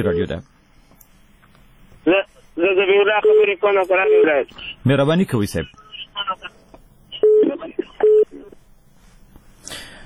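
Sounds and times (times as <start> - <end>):
speech: 0.0 - 0.6, 2.0 - 6.6
telephone line beeps after call cut off: 3.2 - 3.5, 7.2 - 8.5.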